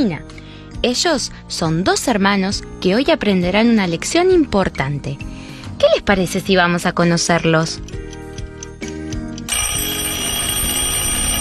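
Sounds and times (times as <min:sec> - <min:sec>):
speech: 0:00.0 - 0:08.1
clock ticking: 0:07.2 - 0:09.6
alarm clock with bright metallic ringing: 0:09.5 - 0:11.3.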